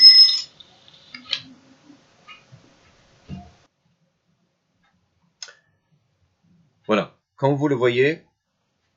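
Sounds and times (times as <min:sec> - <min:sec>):
alarm clock ringing in the morning to wake someone: 0:00.0 - 0:00.6
speech: 0:06.9 - 0:08.3.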